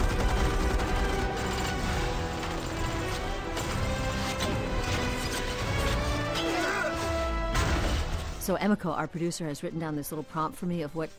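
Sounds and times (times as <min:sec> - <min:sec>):
bursts of gunfire in a movie action scene: 0:00.0 - 0:04.3
pounding orchestral action-movie music: 0:00.0 - 0:11.1
speech: 0:08.5 - 0:11.1.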